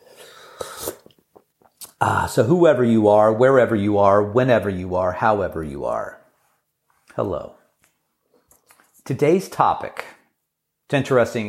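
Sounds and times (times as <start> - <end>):
person slurping tea from a mug: 0.0 - 1.2
speech: 2.0 - 6.2, 7.2 - 7.6, 9.1 - 10.1, 10.9 - 11.4.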